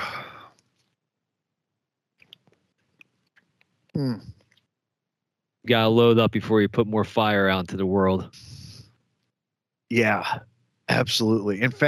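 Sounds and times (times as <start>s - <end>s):
short voiced sigh of relief: 0.0s - 0.5s
soft breathy exhale: 0.0s - 0.5s
speech: 4.0s - 4.4s, 5.7s - 8.5s, 9.9s - 11.8s.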